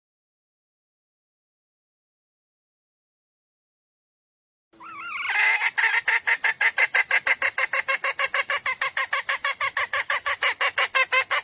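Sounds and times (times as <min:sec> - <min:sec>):
female junglefowl calling: 0:04.8 - 0:11.4.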